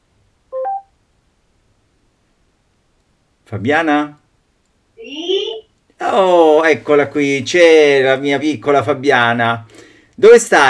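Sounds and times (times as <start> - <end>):
smart speaker drop-in call connecting tone: 0.6 - 0.8
speech: 3.5 - 4.2, 6.1 - 10.6.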